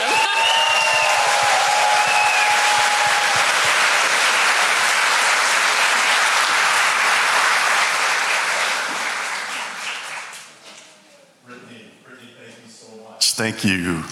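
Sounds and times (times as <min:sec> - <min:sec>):
audience cheering: 0:00.0 - 0:07.8
large audience applause: 0:00.0 - 0:10.5
speech: 0:13.4 - 0:14.1.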